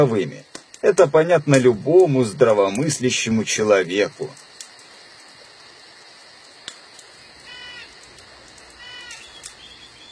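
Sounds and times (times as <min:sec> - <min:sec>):
speech: 0:00.0 - 0:04.5
steady hiss of night ambience: 0:00.0 - 0:10.1
distant night bird cry: 0:07.2 - 0:08.1, 0:08.7 - 0:10.1.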